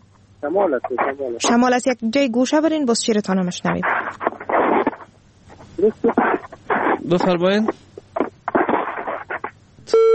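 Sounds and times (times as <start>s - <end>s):
speech: 0.4s - 4.2s, 5.8s - 6.4s, 7.0s - 7.8s
broken talk: 0.4s - 9.7s
telephone tone after a disconnected phone call: 9.9s - 10.1s.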